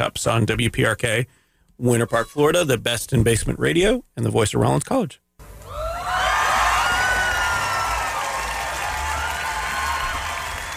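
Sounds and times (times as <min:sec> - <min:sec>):
speech: 0:00.1 - 0:05.2
cheering and whistles: 0:05.6 - 0:10.7
room full of people applauding: 0:05.6 - 0:10.7.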